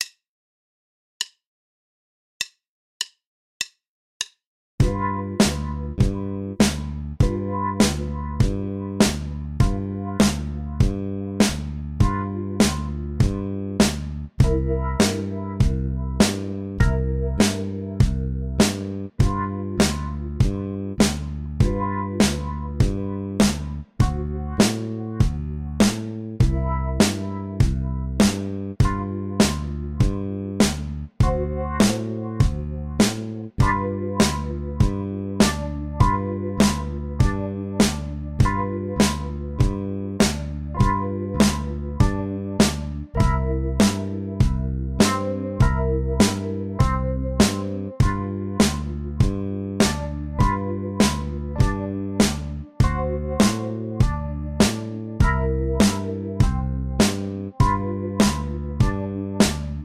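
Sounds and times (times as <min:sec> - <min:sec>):
12 bar blues in G with bass: 0:04.8 - 0:59.8.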